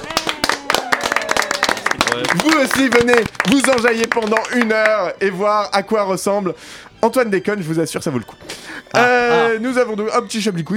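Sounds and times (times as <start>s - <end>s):
studio audience applauding: 0.0s - 5.2s
speech: 2.2s - 10.7s.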